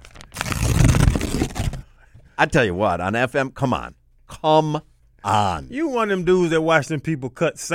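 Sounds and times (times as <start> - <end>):
paper tearing: 0.0 - 1.8
speech: 2.4 - 7.7.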